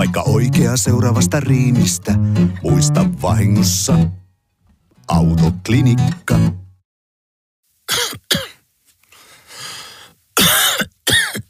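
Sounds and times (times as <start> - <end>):
speech: 0.0 - 4.2, 5.1 - 6.6
person coughing: 7.9 - 8.6, 10.4 - 11.4
raspy inhale: 9.1 - 10.2.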